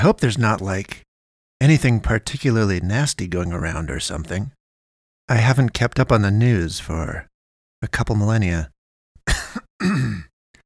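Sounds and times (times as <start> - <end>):
speech: 0.0 - 1.0, 1.6 - 4.6, 5.3 - 8.7, 9.3 - 10.3
person coughing: 9.3 - 10.3.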